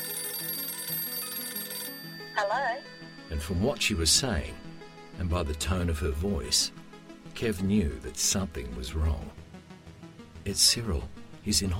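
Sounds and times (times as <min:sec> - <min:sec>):
telephone ringing with a shrill buzzing tone: 0:00.0 - 0:05.7
speech: 0:02.4 - 0:04.6, 0:05.2 - 0:06.8, 0:07.4 - 0:09.4, 0:10.4 - 0:11.7.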